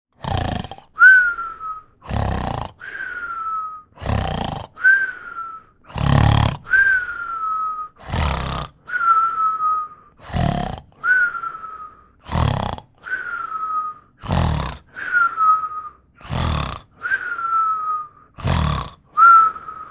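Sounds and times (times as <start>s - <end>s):
snoring: 0.2s - 9.4s, 10.2s - 19.8s.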